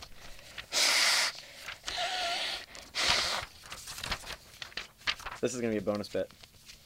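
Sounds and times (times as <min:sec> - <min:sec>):
person blowing nose in forceful breathy blasts: 0:00.7 - 0:03.5
speech: 0:05.4 - 0:06.5.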